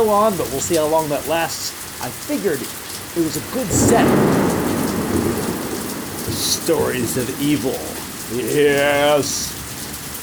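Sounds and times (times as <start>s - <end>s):
speech: 0.0s - 4.7s, 6.4s - 9.6s
heavy rain pouring in a thunderstorm: 0.0s - 10.2s
low rumbling thunder from a storm: 3.3s - 9.8s.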